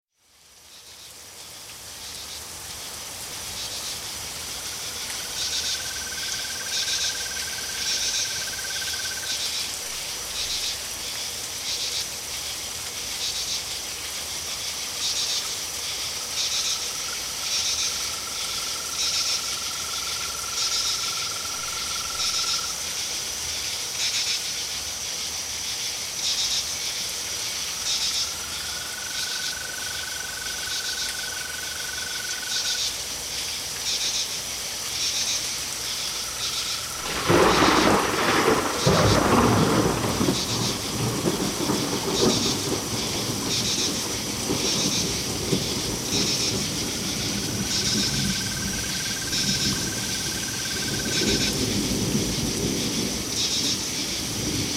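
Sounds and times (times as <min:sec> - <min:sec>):
crickets chirping: 0:00.4 - 0:54.7
storm: 0:37.0 - 0:54.7.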